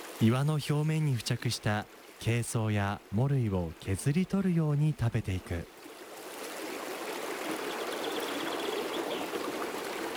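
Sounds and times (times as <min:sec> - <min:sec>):
mountain stream above a waterfall flowing over rocks: 0:00.0 - 0:10.1
speech: 0:00.2 - 0:05.8.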